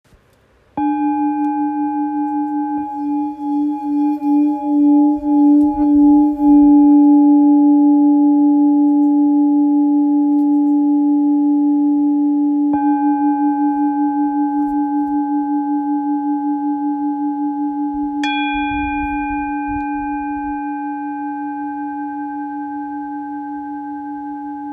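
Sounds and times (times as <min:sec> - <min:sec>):
old 1.06 kg singing bowl tuned to C sharp: 0:00.8 - 0:24.7.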